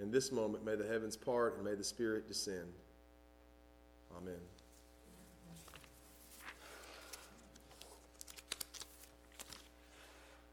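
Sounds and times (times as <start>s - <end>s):
speech: 0.0s - 2.9s, 4.1s - 4.6s
sermon paper pages rustling and being shuffled: 4.6s - 10.1s.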